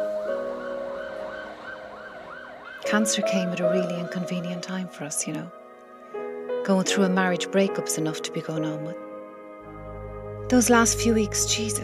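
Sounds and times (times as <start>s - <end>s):
Garda police car siren wailing outside on a road: 0.5s - 2.8s
speech: 2.8s - 5.6s, 6.6s - 9.0s, 10.5s - 11.8s.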